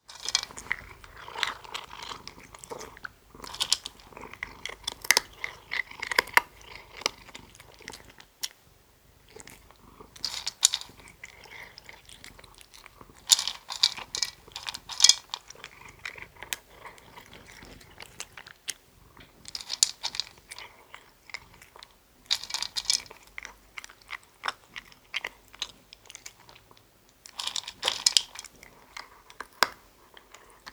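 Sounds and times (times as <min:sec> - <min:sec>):
cat eating dry food: 0:00.0 - 0:30.7.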